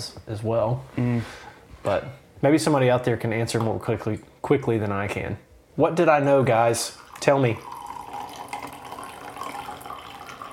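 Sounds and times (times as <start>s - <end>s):
speech: 0.0s - 7.8s
water pouring: 6.8s - 10.5s.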